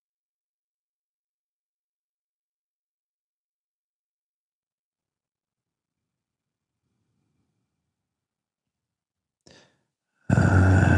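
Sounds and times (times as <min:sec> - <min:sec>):
group taking a deep breath in together: 0:09.5 - 0:10.9.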